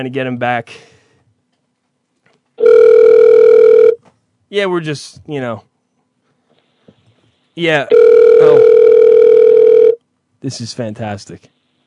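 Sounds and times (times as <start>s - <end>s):
speech: 0.0s - 1.0s, 4.5s - 5.7s, 7.6s - 8.6s, 10.4s - 11.5s
telephone dial tone while redialing a call: 2.6s - 4.0s, 7.9s - 10.0s.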